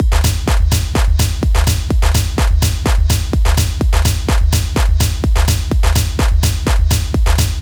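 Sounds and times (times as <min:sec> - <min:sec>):
full drum loop: 0:00.0 - 0:07.5.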